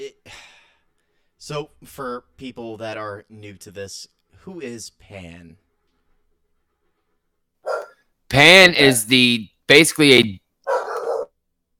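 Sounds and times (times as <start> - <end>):
speech: 1.4 - 5.6, 8.3 - 10.9
dog barking: 7.6 - 8.0, 10.6 - 11.4.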